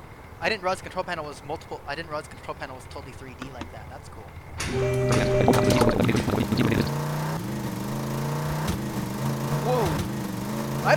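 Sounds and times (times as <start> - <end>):
speech: 0.4 - 7.4
brief clattering and tonal noises: 4.6 - 6.8
motorcycle engine droning: 4.6 - 10.9.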